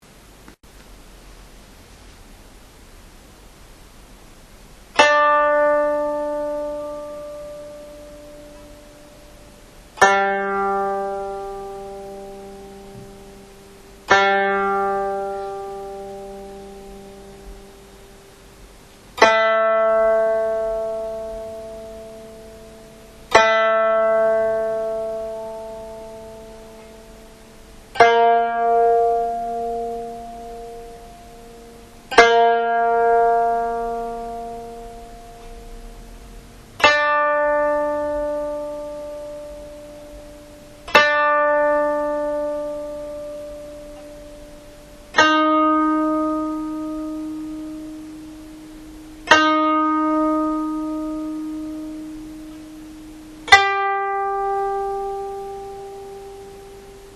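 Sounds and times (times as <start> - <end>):
koto tuned to hirajoshi on Ichikotsu: 4.9 - 57.1.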